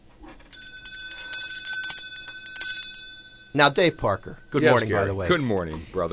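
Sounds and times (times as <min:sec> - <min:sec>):
hand bell ringing: 0:00.5 - 0:05.2
speech: 0:03.6 - 0:06.1.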